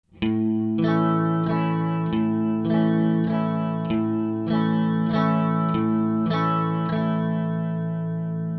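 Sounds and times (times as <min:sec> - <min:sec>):
guitar playing in three-four rhythm: 0:00.2 - 0:08.5.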